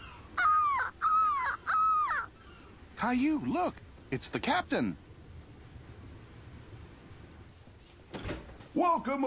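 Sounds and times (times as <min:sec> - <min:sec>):
seagull cries: 0:00.0 - 0:02.4
speech: 0:03.0 - 0:05.1, 0:08.8 - 0:09.2.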